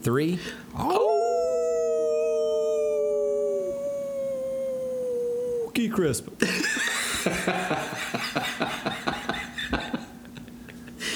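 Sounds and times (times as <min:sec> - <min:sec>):
speech: 0:00.0 - 0:01.2, 0:05.8 - 0:08.8
two people howling like wolves: 0:00.8 - 0:05.8
laughter: 0:06.4 - 0:11.1.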